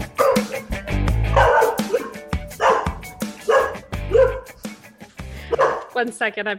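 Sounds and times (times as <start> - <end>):
dog barking: 0.2 - 0.7, 1.3 - 4.6, 5.5 - 6.0
dog yipping and whining: 0.2 - 0.7, 1.3 - 4.5
speech: 6.0 - 6.5.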